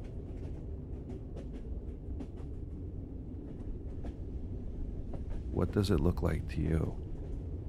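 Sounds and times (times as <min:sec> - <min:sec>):
train rumbling over railroad tracks: 0:00.0 - 0:07.6
speech: 0:05.6 - 0:07.0.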